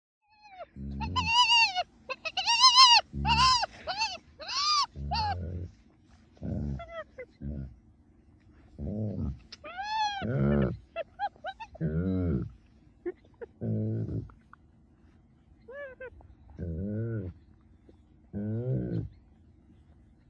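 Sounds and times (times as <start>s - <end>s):
hyenas calling: 0.3s - 7.8s, 8.7s - 14.5s, 15.7s - 17.5s.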